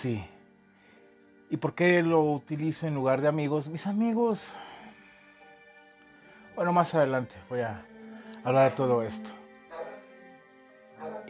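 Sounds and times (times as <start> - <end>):
speech: 0.0 - 0.3, 1.5 - 4.6, 6.6 - 9.4
dog vocalizing with a drawn-out tonal sound: 9.7 - 10.1, 11.0 - 11.2.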